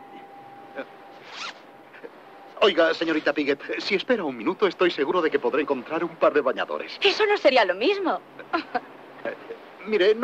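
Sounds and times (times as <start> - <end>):
quiet hum: 0.0 - 10.2
speech: 0.8 - 1.6, 2.6 - 10.2
zipper being pulled down: 1.2 - 1.6.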